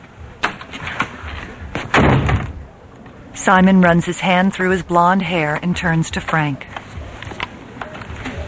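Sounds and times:
door slamming shut during a confrontation: 0.4 - 2.7
speech: 3.4 - 6.8.

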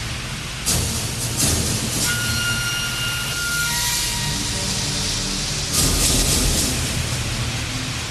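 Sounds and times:
steam hissing from train brakes: 0.0 - 8.0
faint metallic squeals: 2.0 - 5.5.

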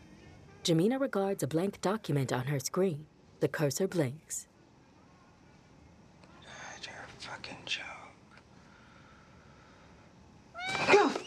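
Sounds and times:
speech: 0.7 - 4.5, 7.2 - 8.0
fluffy cat crying: 10.5 - 11.2.

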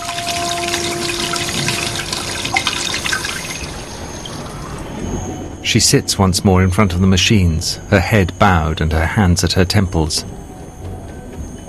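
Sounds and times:
tap spewing a torrent of water: 0.0 - 3.8
faint tonal whine: 0.0 - 11.6
speech: 5.7 - 10.4.

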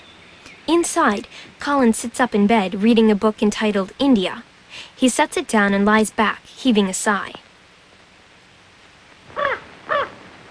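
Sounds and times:
speech: 0.7 - 7.4
raven cawing inside a bedroom: 9.3 - 10.2.

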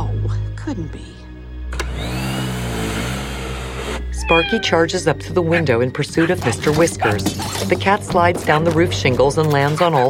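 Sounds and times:
speech: 0.7 - 1.3, 3.9 - 10.0
vacuum cleaner running in a living room: 1.7 - 4.1.

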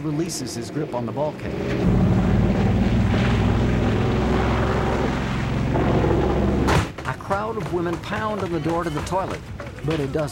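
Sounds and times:
speech: 0.0 - 2.3, 7.5 - 10.3
airplane climbing in flight over forests and fields: 0.7 - 6.8.

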